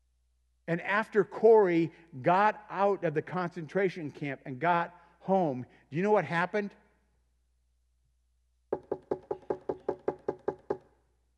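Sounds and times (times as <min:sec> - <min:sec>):
speech: 0:00.7 - 0:06.8
firm knocking on a wooden door: 0:08.7 - 0:10.9.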